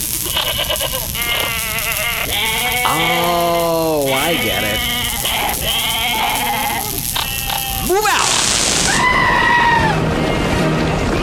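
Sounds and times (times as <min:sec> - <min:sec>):
herd noise: 0:00.0 - 0:11.2
goats bleating: 0:00.2 - 0:08.5.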